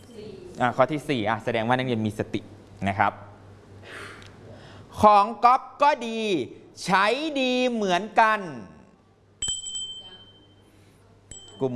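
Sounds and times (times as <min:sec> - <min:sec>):
low hum: 0:00.0 - 0:11.7
speech: 0:00.6 - 0:04.1, 0:05.0 - 0:08.7
teacher ringing a small hand bell in a classroom: 0:09.4 - 0:10.7, 0:11.3 - 0:11.7.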